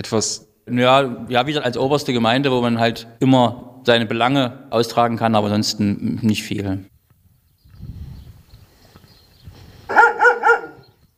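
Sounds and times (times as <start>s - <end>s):
speech: 0.0s - 6.9s
dogs barking: 9.9s - 11.0s.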